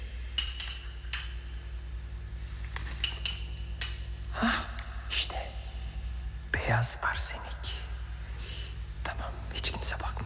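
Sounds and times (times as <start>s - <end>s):
low steady hum: 0.0s - 10.2s
glass bottles clinking in a poison cabinet: 0.4s - 1.7s, 2.9s - 4.3s
speech: 6.7s - 7.6s, 9.8s - 10.2s.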